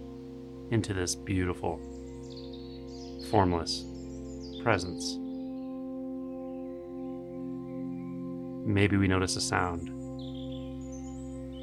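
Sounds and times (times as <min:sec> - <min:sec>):
bird chirping in short high tweets: 0:00.0 - 0:11.6
speech: 0:00.7 - 0:02.0, 0:03.3 - 0:03.9, 0:04.6 - 0:05.2, 0:08.7 - 0:10.0.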